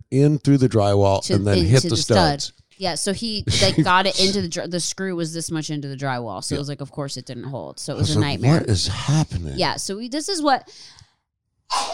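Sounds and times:
speech: 0.1s - 11.0s
laughter: 0.2s - 2.4s, 3.3s - 4.5s, 7.5s - 9.6s
person sneezing: 1.4s - 2.3s, 3.5s - 4.4s, 11.7s - 11.9s.

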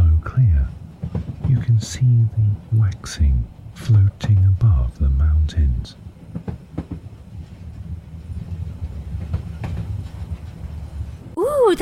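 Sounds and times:
train rolling along the rails: 0.0s - 11.7s
speech: 0.3s - 6.5s
wheels clickety-clack over track joints: 0.9s - 2.0s, 6.1s - 11.2s.

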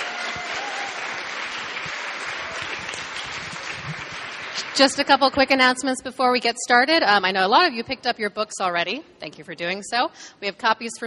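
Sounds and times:
audience applauding: 0.0s - 5.2s
speech: 4.8s - 11.0s.

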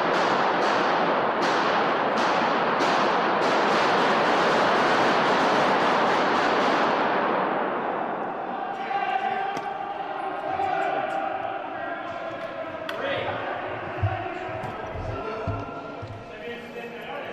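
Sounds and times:
sharp gunshots: 0.0s - 8.0s
dense continuous crowd roar: 4.1s - 17.0s
overlapping voices: 8.0s - 17.3s.

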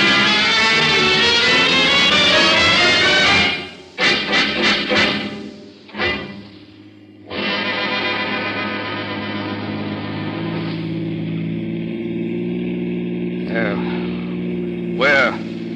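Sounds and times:
old car engine droning while driving: 0.0s - 15.7s.

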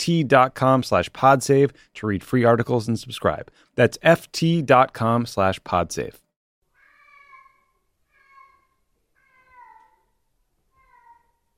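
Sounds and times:
speech: 0.0s - 6.2s
cat meowing: 6.8s - 10.0s, 10.7s - 11.3s.

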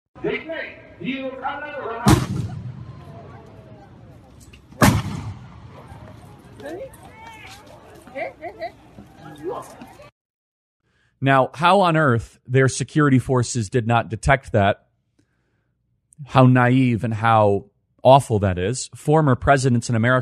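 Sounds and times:
speech: 0.2s - 2.5s, 6.6s - 10.1s, 11.2s - 14.8s, 16.2s - 20.2s
voices and crowd commotion: 0.2s - 10.1s
gunshots in news footage of a shooting: 2.0s - 3.3s, 4.7s - 6.0s.

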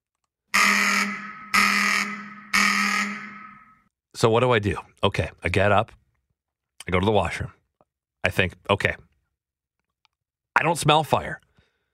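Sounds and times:
apartment building fire alarm ringing indoors: 0.5s - 3.9s
speech: 4.2s - 6.0s, 6.9s - 7.6s, 8.2s - 9.1s, 10.6s - 11.4s.

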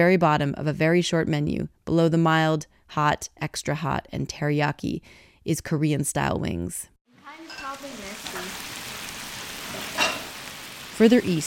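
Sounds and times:
speech: 0.0s - 6.9s, 11.0s - 11.4s
bulgogi sizzling on a hot grill: 7.2s - 11.4s.

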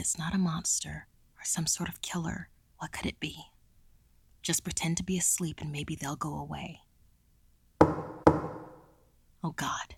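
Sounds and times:
speech: 0.0s - 3.5s, 4.4s - 6.8s, 9.4s - 9.9s
firm resonant knocking: 7.8s - 8.9s.

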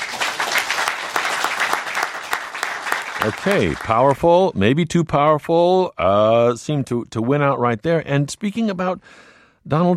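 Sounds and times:
room full of people clapping: 0.0s - 4.4s
speech: 3.2s - 9.9s.

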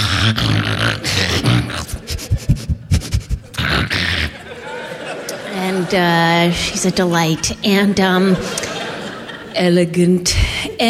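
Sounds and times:
person imitating their own dog with panting-like huffs: 0.0s - 4.5s
laughter: 1.0s - 9.8s
speech: 5.9s - 8.6s, 9.6s - 10.8s.

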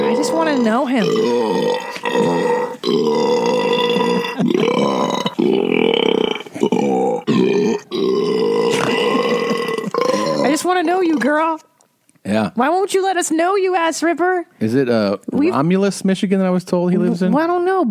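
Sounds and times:
long loud burp after drinking soda: 0.0s - 11.4s
speech: 0.4s - 3.4s, 10.8s - 11.6s, 12.3s - 17.8s.

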